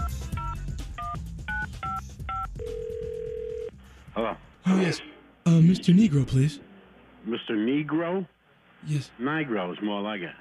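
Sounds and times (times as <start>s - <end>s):
longer steady telephone tone: 2.3s - 3.7s
speech: 4.2s - 10.3s.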